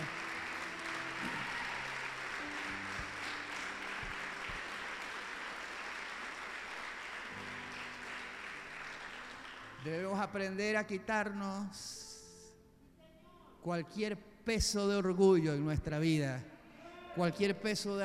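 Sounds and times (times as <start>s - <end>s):
audience applauding loudly: 0.0s - 9.9s
soft sustained keyboard chords: 0.0s - 12.8s
speech: 9.8s - 12.0s, 13.6s - 16.5s, 17.2s - 18.0s.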